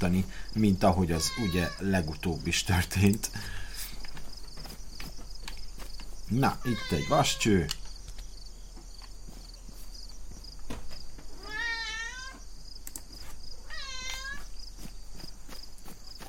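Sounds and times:
speech: 0.0 - 3.6, 6.3 - 7.8
steady low noise: 0.0 - 16.2
house cat meowing: 1.2 - 1.9, 6.6 - 7.5, 11.4 - 12.4, 13.6 - 14.5
scattered faint clicks: 7.6 - 8.4, 12.8 - 13.1.

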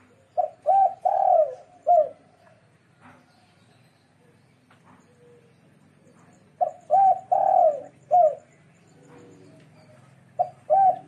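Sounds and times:
dove cooing: 0.0 - 2.4, 4.9 - 11.0.

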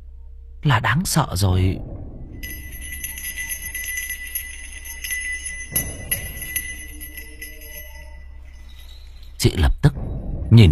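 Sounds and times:
speech: 0.6 - 2.6, 9.4 - 9.8, 10.5 - 10.7
bell ringing: 2.4 - 9.4.

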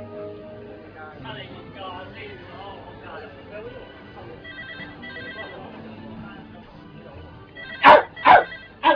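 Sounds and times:
dog barking in short sharp bursts: 7.8 - 8.9.

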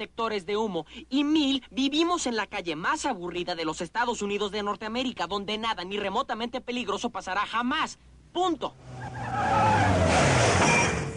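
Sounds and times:
speech: 0.0 - 9.9
tire squeal as a pizza delivery car brakes hard on a street: 8.8 - 11.1.

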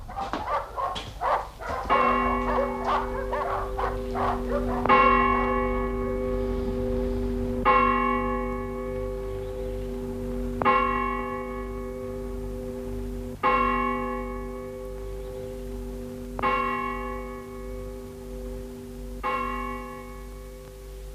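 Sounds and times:
dogs barking at night: 0.0 - 5.9
deep bell tolling: 0.0 - 21.1.

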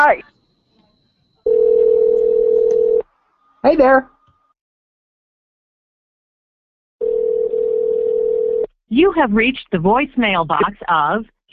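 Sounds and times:
speech: 0.1 - 0.3, 3.6 - 4.1, 8.9 - 11.5
telephone dial tone: 1.5 - 3.0, 7.0 - 8.7.

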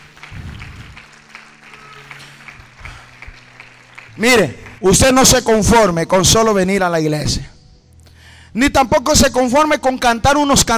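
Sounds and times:
church congregation applauding during a worship service: 0.0 - 5.9
speech: 4.2 - 7.5, 8.5 - 10.7.

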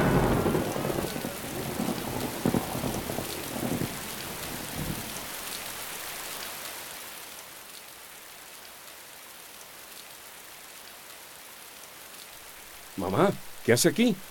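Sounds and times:
deep rolling thunder: 0.0 - 5.3
heavy rain in a thunderstorm: 0.0 - 14.3
speech: 13.0 - 14.3.

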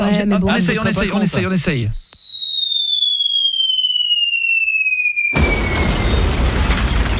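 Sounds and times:
speech: 0.0 - 2.0
video game missile whistling in: 3.1 - 7.1
video game missile explosion: 5.3 - 7.1.

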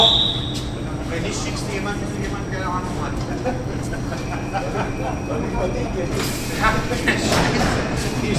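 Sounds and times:
indistinct voices at a main station: 0.0 - 8.3
train departing from platform 9 with rumble and hiss: 0.0 - 8.3
laughter: 2.9 - 8.1.

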